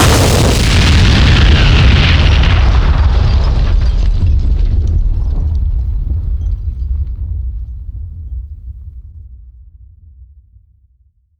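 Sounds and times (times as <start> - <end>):
explosions on the ground: 0.0 - 8.0.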